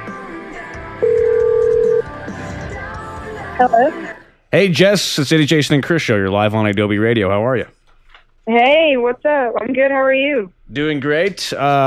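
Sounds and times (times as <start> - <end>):
telephone beep of a live call being placed: 1.0 - 2.1
speech: 3.6 - 7.8, 8.5 - 11.8
faint hum: 3.6 - 11.8.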